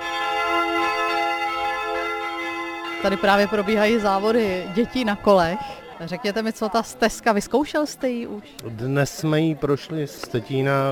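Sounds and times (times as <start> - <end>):
church bells ringing at Tetín: 0.0 - 7.0
speech: 3.0 - 10.9.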